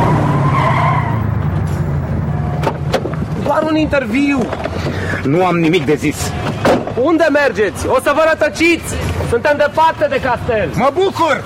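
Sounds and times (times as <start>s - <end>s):
car skidding with tires squealing: 0.0s - 1.4s
heavy car engine rumble: 0.0s - 10.8s
speech: 3.7s - 11.4s.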